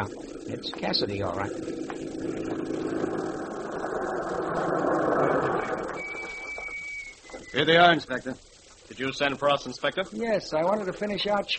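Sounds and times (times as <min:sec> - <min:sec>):
speech: 0:00.0 - 0:03.0, 0:04.0 - 0:05.0, 0:07.5 - 0:11.5
police car engine rumbling as the car arrives: 0:00.0 - 0:06.5.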